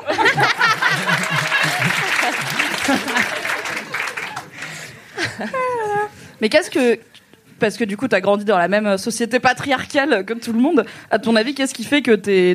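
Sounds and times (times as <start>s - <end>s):
people chuckling: 0.0s - 6.1s
crowd applauding: 0.2s - 5.0s
speech: 5.4s - 12.5s.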